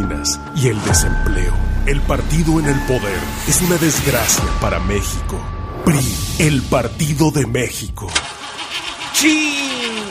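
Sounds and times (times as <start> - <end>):
speech: 0.2 - 8.3, 9.2 - 9.8
car engine cranking and starting: 8.0 - 10.0.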